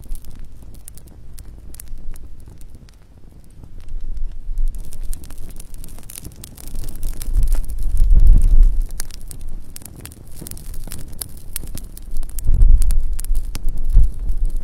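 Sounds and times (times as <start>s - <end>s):
calm night campfire crackling: 0.0s - 14.6s
low soft rumbles: 3.8s - 11.0s, 11.6s - 14.6s.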